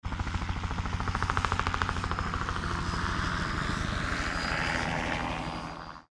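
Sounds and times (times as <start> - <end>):
helicopter passing by: 0.0 - 6.1.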